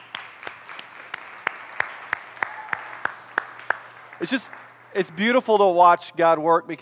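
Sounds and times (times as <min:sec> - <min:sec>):
crowd applauding in a large room: 0:00.0 - 0:05.4
speech: 0:04.2 - 0:06.7.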